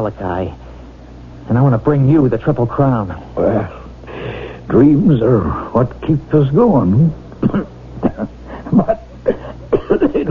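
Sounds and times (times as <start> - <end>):
speech: 0.0 - 0.6, 1.5 - 3.8, 4.7 - 10.3
faint low hum: 0.0 - 10.3
short harsh coughs: 7.4 - 10.3.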